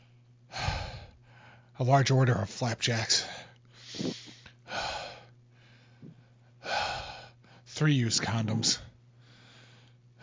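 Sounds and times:
exaggerated raspy heavy breathing in obscene-caller style: 0:00.0 - 0:01.8, 0:03.2 - 0:07.7, 0:09.2 - 0:10.2
speech: 0:01.8 - 0:03.4, 0:07.8 - 0:08.9.

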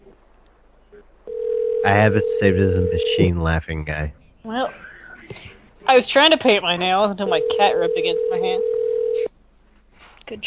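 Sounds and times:
telephone line ringing tone: 0:01.3 - 0:01.9, 0:07.3 - 0:09.3
speech: 0:01.8 - 0:09.3, 0:10.3 - 0:10.4
laughter: 0:01.9 - 0:04.1.

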